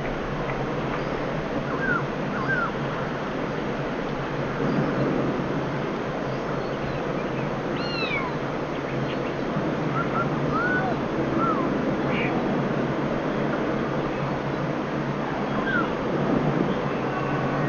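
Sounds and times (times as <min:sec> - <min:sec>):
constant hiss: 0:00.0 - 0:17.6
Black-throated laughingthrush calling: 0:01.7 - 0:02.8, 0:07.7 - 0:12.4.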